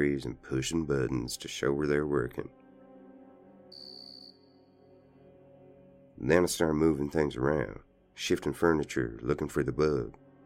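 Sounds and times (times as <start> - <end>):
speech: 0.0 - 2.6, 6.2 - 10.2
cricket chirping: 3.7 - 4.8.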